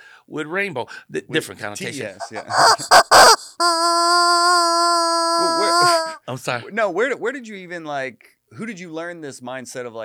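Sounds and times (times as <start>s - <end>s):
speech: 0.3s - 10.0s
orange rubber chicken squawking and wheezing: 2.2s - 6.2s.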